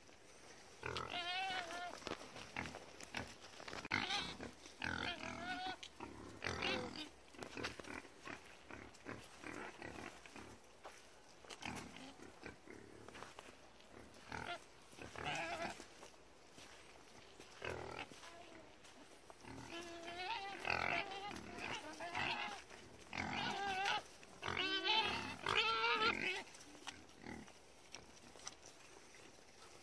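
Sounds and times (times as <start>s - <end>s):
wild boars: 0.0s - 29.8s.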